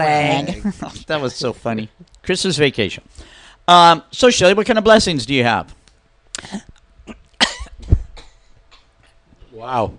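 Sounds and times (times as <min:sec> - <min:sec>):
speech: 0:00.0 - 0:05.8, 0:06.4 - 0:06.7, 0:09.6 - 0:09.9
person coughing after inhaling saliva: 0:06.4 - 0:08.9.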